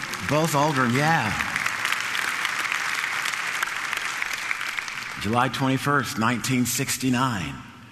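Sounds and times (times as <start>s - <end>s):
audience applause: 0.0s - 5.8s
speech: 0.3s - 1.4s, 5.2s - 7.7s.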